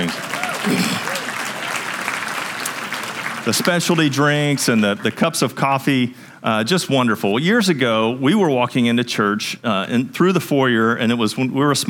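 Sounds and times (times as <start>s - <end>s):
church congregation applauding: 0.0s - 5.2s
speech: 3.4s - 11.8s.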